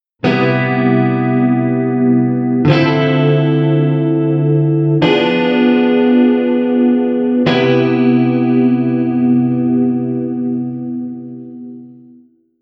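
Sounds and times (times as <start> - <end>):
chord cadence C7M Dm79 Fo C7M: 0.2 - 12.2.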